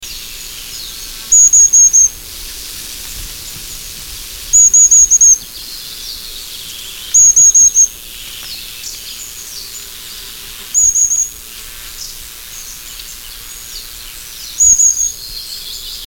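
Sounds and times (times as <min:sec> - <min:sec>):
steady background hiss: 0:00.0 - 0:16.0
long-tailed tit calling see-see notes: 0:00.1 - 0:09.3, 0:10.7 - 0:11.4, 0:14.6 - 0:15.2.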